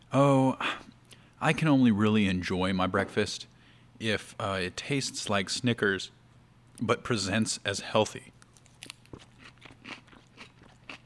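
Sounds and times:
speech: 0.1 - 0.8, 1.4 - 6.2, 6.8 - 8.4
chewing and crunching salad: 8.4 - 11.0.

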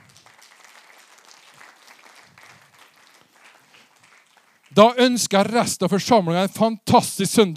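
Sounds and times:
audience applauding: 0.0 - 5.0
speech: 4.7 - 7.5.

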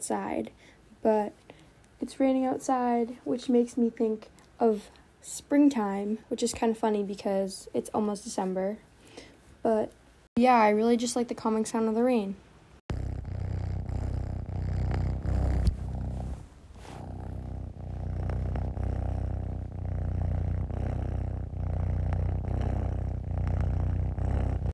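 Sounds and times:
speech: 0.0 - 8.9, 9.6 - 12.4
domestic cat purring on a lap: 12.9 - 24.7.

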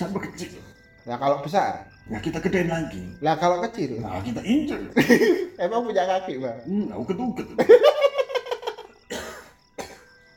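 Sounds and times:
speech: 0.4 - 8.1
laughter: 4.8 - 5.6, 6.8 - 9.0
wheezy morning cough: 9.1 - 10.1.

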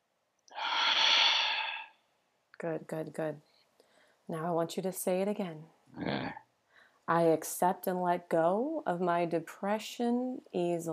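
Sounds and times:
long deep breath during a guided breathing exercise: 0.5 - 2.0
speech: 2.6 - 3.5, 4.3 - 6.4, 7.1 - 10.9.

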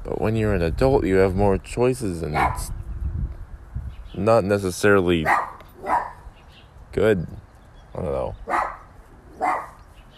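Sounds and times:
speech: 0.2 - 2.8, 4.2 - 5.5, 6.9 - 7.4, 8.0 - 8.5
dog barking: 2.3 - 2.7, 5.2 - 6.2, 8.5 - 9.8.

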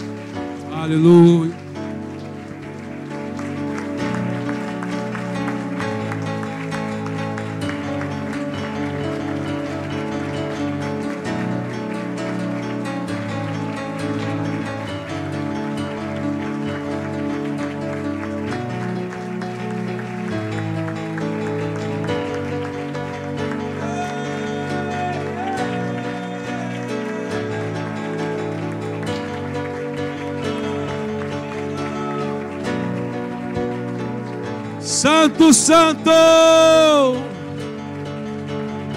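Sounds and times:
audience applauding loudly: 0.0 - 38.9
sustained keyboard chords: 0.0 - 38.9
speech: 0.8 - 1.6, 35.4 - 37.3.

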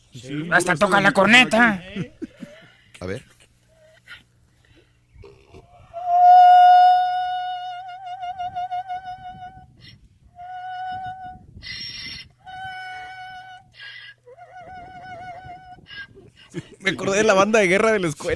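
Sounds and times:
speech: 0.2 - 2.2, 3.0 - 3.3, 16.9 - 18.3
Irish donkey braying: 5.2 - 16.4.

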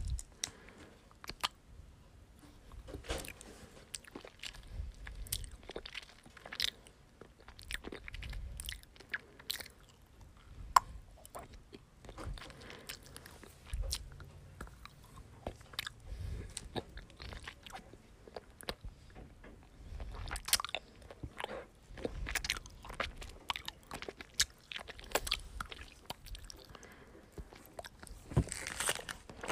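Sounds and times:
someone crunchily chewing a snack: 2.7 - 29.5.

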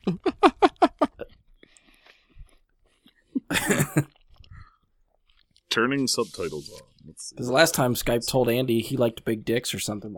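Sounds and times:
person chewing loudly: 0.8 - 5.7
speech: 5.8 - 10.1.

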